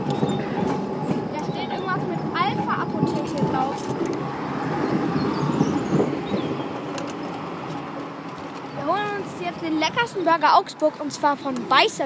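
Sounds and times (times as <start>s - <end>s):
tram wheels rolling on rails: 0.0s - 12.0s
speech: 10.0s - 12.0s.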